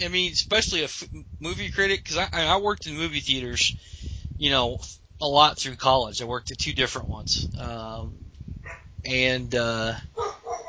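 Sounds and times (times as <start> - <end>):
speech: 0.0 - 8.2, 9.0 - 10.2
dog barking: 8.6 - 8.9, 10.2 - 10.6.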